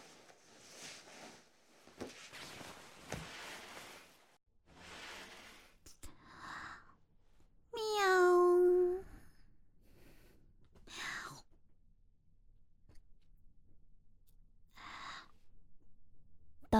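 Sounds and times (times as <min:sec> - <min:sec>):
person imitating a cat meow: 0:07.8 - 0:09.0.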